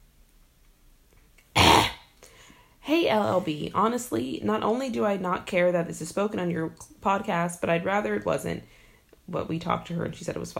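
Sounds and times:
sharp forceful cough: 1.6 - 2.0
speech: 2.9 - 10.5.

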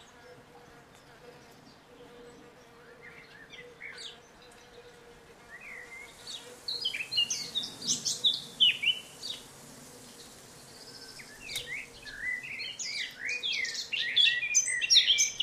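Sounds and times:
blackcap warbling song: 5.5 - 15.4.

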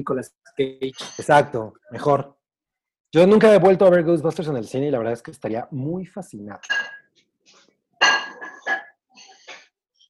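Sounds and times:
speech: 0.0 - 2.4, 3.1 - 7.0
ceramic flower pots clinking and scraping while moved: 6.6 - 7.2, 8.0 - 9.4.

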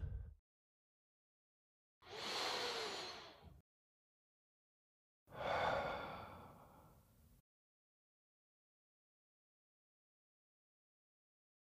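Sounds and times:
deep breaths in and out: 2.1 - 3.6, 5.3 - 7.2.

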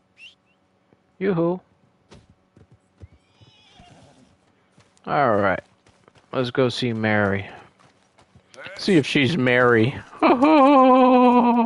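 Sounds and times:
speech: 1.2 - 1.7, 5.0 - 5.7, 6.3 - 7.6, 8.7 - 11.6
horse hooves clip-clopping: 2.1 - 11.6
horse whinnying in a long wavering call: 3.1 - 4.3
laughter: 8.8 - 11.6.

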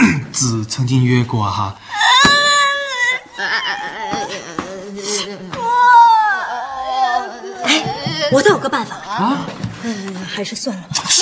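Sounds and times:
speech: 0.4 - 2.0, 8.3 - 11.2
sobbing: 1.8 - 10.3
person crying and wailing loudly: 1.9 - 9.5.

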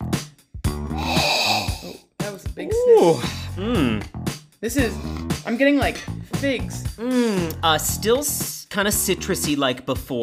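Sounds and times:
person sniffing a drink at a blind tasting: 0.9 - 1.9
speech: 2.4 - 10.2.

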